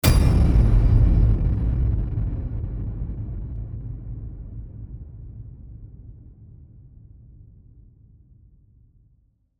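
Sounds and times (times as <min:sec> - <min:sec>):
epic low hit: 0:00.0 - 0:06.6.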